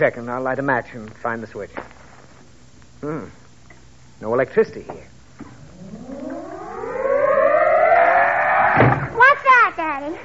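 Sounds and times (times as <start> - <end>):
speech: 0.0 - 2.0, 3.0 - 3.4, 4.2 - 5.1
wind howling and whistling: 5.6 - 9.2
door slammed shut by wind: 8.8 - 9.2.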